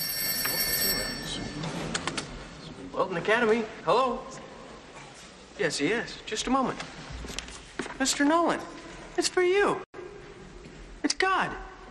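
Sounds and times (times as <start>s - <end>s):
old-fashioned telephone bell ringing: 0.0s - 1.9s
speech: 3.0s - 4.4s, 5.6s - 7.0s, 8.0s - 9.9s.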